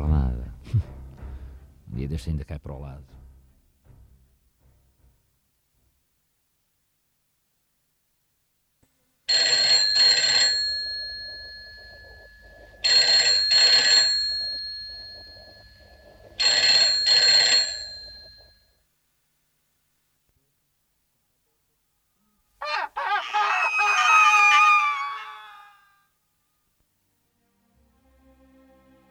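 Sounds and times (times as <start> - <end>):
speech: 0.7 - 1.0, 2.0 - 3.2
telephone ringing: 9.3 - 18.8
laughter: 22.6 - 25.6.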